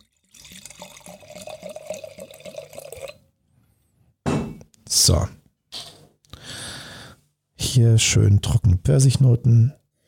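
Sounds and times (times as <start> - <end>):
wine poured from screw-cap bottle into glass: 0.0 - 3.2
speech: 4.9 - 5.4, 7.8 - 9.8.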